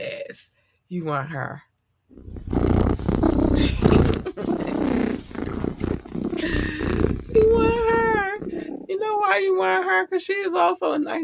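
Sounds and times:
speech: 0.9 - 2.2, 9.1 - 11.2
female cat purring loudly: 2.2 - 9.2.

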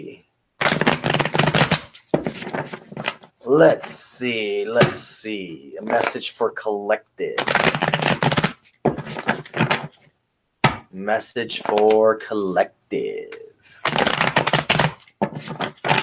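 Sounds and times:
deck of cards shuffled in crisp riffling bursts for a card reading: 0.6 - 3.3, 7.4 - 10.1, 13.8 - 16.0
speech: 3.5 - 8.2, 11.0 - 13.2.

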